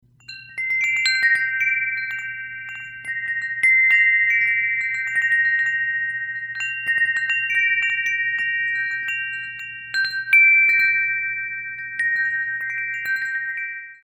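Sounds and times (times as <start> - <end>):
glass fish wind chime 55cm: 0.0 - 14.0.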